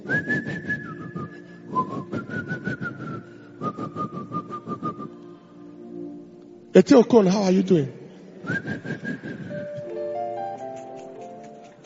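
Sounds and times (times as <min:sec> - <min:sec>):
person whistling a wobbly tune imitating a drunkard: 0:00.0 - 0:05.3, 0:08.4 - 0:10.8
speech: 0:06.8 - 0:08.6.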